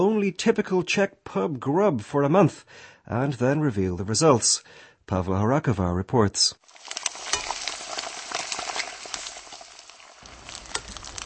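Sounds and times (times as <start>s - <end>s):
speech: 0.0s - 6.6s
fat from sausages sizzling on a grill at a street kiosk in Prague: 6.6s - 11.2s.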